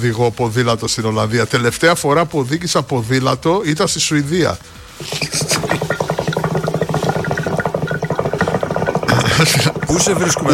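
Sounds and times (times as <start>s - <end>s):
speech: 0.0s - 5.9s, 9.4s - 10.5s
hookah water pipe bubbling: 2.1s - 10.5s.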